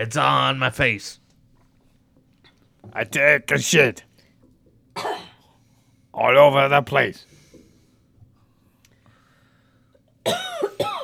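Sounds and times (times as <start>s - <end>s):
speech: 0.0s - 1.2s, 2.8s - 4.1s, 6.2s - 7.3s, 10.3s - 10.5s
woman coughing harshly: 5.0s - 5.5s, 10.2s - 11.0s.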